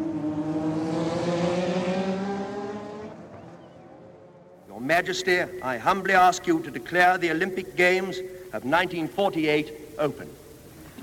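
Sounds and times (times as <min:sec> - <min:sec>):
high-revving race car engine roaring past on a track: 0:00.0 - 0:04.7
speech: 0:04.9 - 0:10.4.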